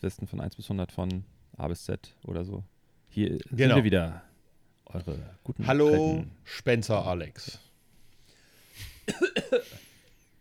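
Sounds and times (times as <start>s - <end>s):
speech: 0.0s - 4.3s, 4.9s - 7.7s, 8.8s - 9.7s
harsh coughs with a breathy lead-in: 9.0s - 9.9s.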